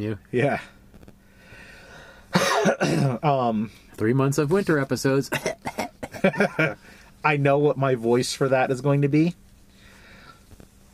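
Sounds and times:
speech: 0.0 - 0.8, 2.6 - 9.4
faint hiss: 0.0 - 10.9
harsh cough: 2.3 - 3.2, 5.3 - 6.7.

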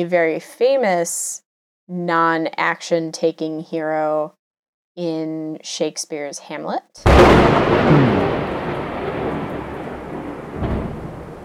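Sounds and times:
speech: 0.0 - 4.4, 5.0 - 8.3
thunder rumbling: 7.1 - 11.4.

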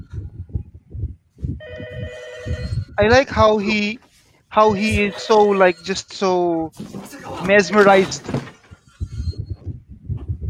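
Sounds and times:
low rumbling: 0.0 - 5.8, 7.8 - 10.4
telephone ringing with an electronic trill: 1.6 - 2.9, 4.7 - 5.8
speech: 2.5 - 8.4.

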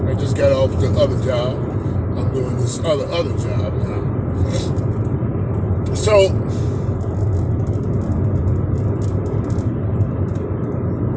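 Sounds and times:
road noise from inside a car driven down a road at night: 0.0 - 11.1
speech: 0.1 - 5.0, 5.9 - 6.8
faint rattles inside a car: 4.4 - 11.1.

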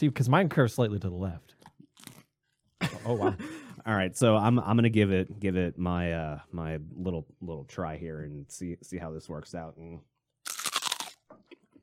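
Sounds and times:
speech: 0.0 - 1.6, 3.0 - 10.1
softer chewing crunches of pizza crust: 1.6 - 2.6, 10.4 - 11.8
crunchy bite into crisp pizza crust: 10.4 - 11.2.

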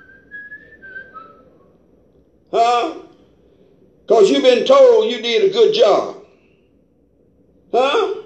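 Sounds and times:
person whistling a short wavering tune: 0.0 - 1.6
low rumble: 0.0 - 8.2
speech: 4.2 - 6.2.

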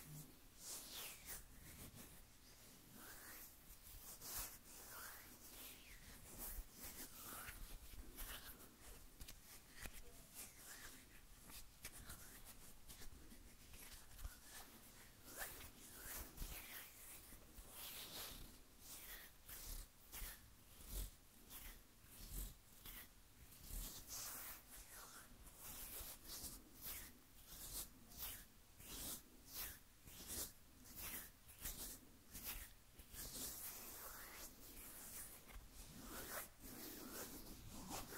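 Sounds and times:
dense rhythmic hand brushing swishes: 0.0 - 28.5, 29.2 - 38.1
hands rubbing and scratching: 0.0 - 38.1.

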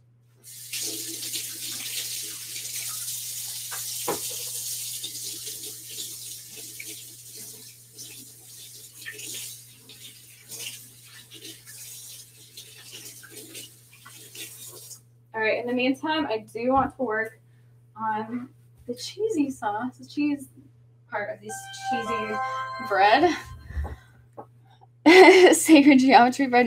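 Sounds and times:
water running from a sink tap while washing hands: 0.4 - 15.0
speech: 15.7 - 17.4, 18.0 - 23.5, 25.2 - 26.6.

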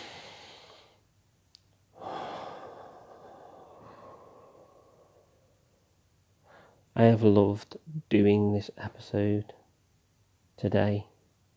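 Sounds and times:
deep breath: 0.0 - 1.0, 1.9 - 6.9
speech: 7.0 - 9.6, 10.6 - 11.1.

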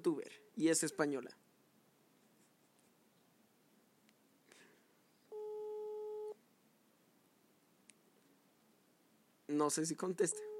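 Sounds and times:
speech: 0.0 - 1.4, 9.5 - 10.5
telephone busy tone from an unanswered call: 5.3 - 6.4, 10.3 - 10.5.

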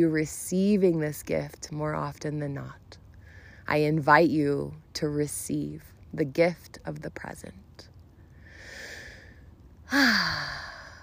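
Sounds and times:
speech: 0.0 - 2.9, 3.7 - 7.6, 9.9 - 10.7
deep breath released as a voiced sigh at the close of a meditation ceremony: 8.3 - 11.0.

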